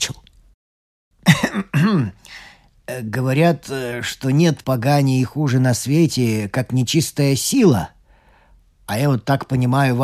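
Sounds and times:
person performing a polite little cough: 1.2 - 2.2
speech: 2.9 - 8.0, 8.9 - 10.0
faint breathy exhale: 8.0 - 8.6.

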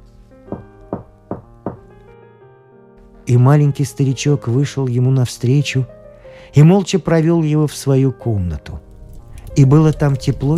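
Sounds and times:
firm knocks on a door: 0.5 - 1.9
speech: 3.3 - 8.9, 9.6 - 10.5.

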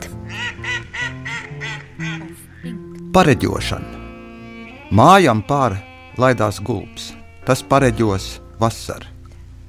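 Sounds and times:
faint steady hum: 0.0 - 9.6
duck quacking: 0.3 - 2.8
speech: 3.1 - 4.0, 4.9 - 9.1.

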